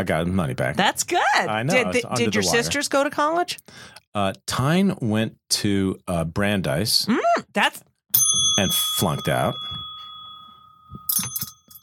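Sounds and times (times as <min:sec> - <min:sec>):
speech: 0:00.0 - 0:09.8
small bell ringing: 0:08.2 - 0:11.8.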